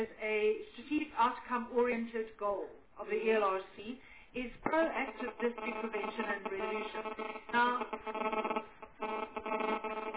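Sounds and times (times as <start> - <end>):
speech: 0.0 - 9.7
cell phone ringtone melody during a meeting: 5.1 - 10.1.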